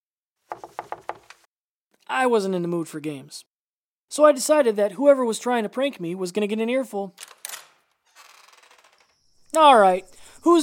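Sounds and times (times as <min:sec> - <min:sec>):
knocking on a wooden door: 0:00.5 - 0:01.3
speech: 0:02.1 - 0:03.5, 0:04.1 - 0:07.4, 0:09.6 - 0:10.6.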